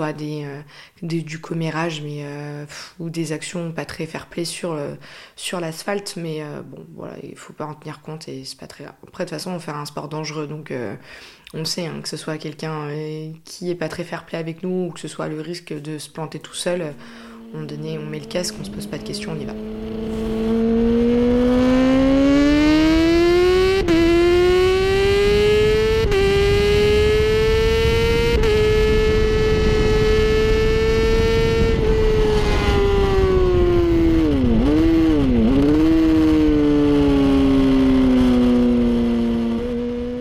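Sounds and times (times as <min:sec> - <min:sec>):
speech: 0:00.0 - 0:20.2
sports motorcycle engine revving through gear shifts: 0:16.8 - 0:40.1.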